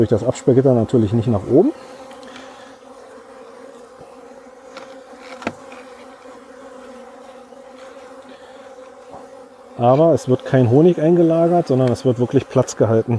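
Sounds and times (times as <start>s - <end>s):
speech: 0.0s - 2.0s, 9.8s - 13.1s
worker honeybees buzzing at an open hive during a hive inspection: 0.0s - 13.1s.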